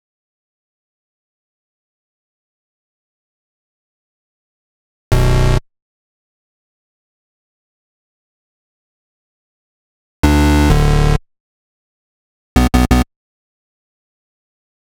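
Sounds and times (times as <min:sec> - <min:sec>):
complex electro bass synths in B minor: 0:05.2 - 0:05.6, 0:10.2 - 0:11.2, 0:12.6 - 0:13.0.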